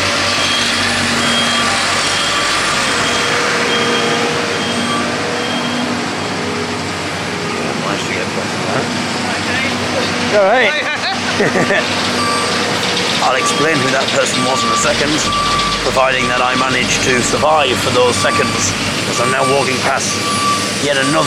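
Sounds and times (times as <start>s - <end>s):
vehicle engine rumble approaching among cranes at a busy site: 0.0s - 21.2s
faint tonal beeps: 0.3s - 5.9s, 13.2s - 21.2s
laughter: 8.4s - 9.2s, 9.8s - 12.2s
speech: 10.4s - 10.8s, 11.4s - 12.2s, 13.3s - 21.2s.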